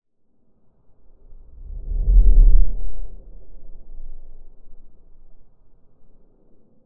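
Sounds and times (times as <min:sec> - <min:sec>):
rumble: 0:00.2 - 0:06.8
whoosh: 0:01.3 - 0:05.2.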